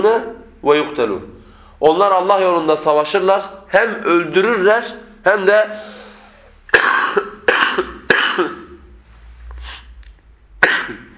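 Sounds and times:
speech: 0.0 - 6.0
harsh coughs: 6.2 - 8.9, 10.6 - 11.1.

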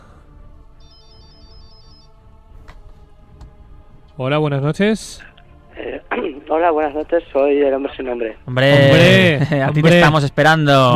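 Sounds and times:
telephone ringtone of an incoming call: 0.8 - 2.2
speech: 4.2 - 5.3, 6.5 - 10.9.

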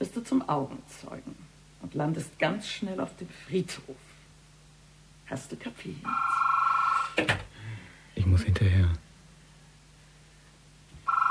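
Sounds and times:
speech: 0.2 - 4.1, 5.3 - 6.4, 7.2 - 7.5, 8.2 - 9.0
electronic telephone ringing with a warbling two-note tone: 6.1 - 7.0, 11.0 - 11.2.

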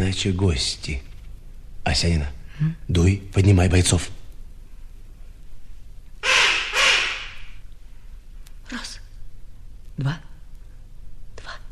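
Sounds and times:
speech: 0.1 - 1.1, 1.8 - 4.2, 10.0 - 10.3
harsh rasping magpie calls: 6.2 - 7.6.

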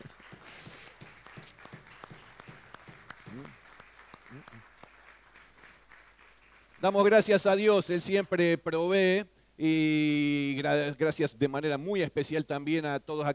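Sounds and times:
voice rising above clapping: 0.0 - 6.7
audience applause in a church: 0.0 - 7.0
speech: 6.8 - 13.3.

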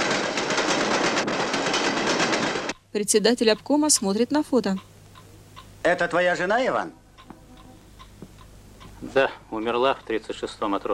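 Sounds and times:
oncoming freight train of tank cars rolling past: 0.0 - 2.7
freight train wheel clatter: 0.0 - 4.8
speech: 2.9 - 4.9, 5.8 - 7.0, 9.0 - 10.9.

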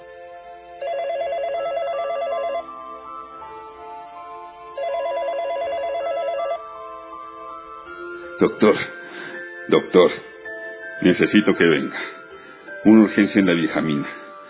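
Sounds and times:
low steady background: 0.0 - 14.4
telephone bell ringing at night: 0.8 - 2.8, 4.7 - 6.7
speech: 8.4 - 9.0, 9.7 - 10.3, 11.0 - 12.1, 12.8 - 14.2.

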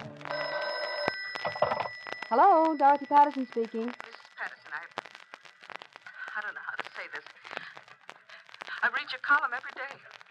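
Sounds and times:
old telephone bell ringing: 0.3 - 4.0
speech: 2.3 - 4.2, 9.3 - 10.1.

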